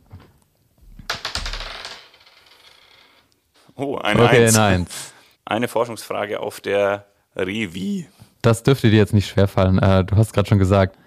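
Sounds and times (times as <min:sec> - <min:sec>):
dice clattering across a hard surface: 0:01.1 - 0:03.0
speech: 0:03.8 - 0:11.0.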